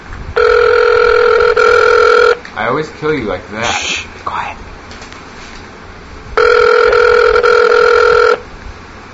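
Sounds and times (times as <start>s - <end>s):
electronic telephone ring two-tone buzz: 0.4s - 2.4s, 6.4s - 8.4s
speech: 2.7s - 4.6s.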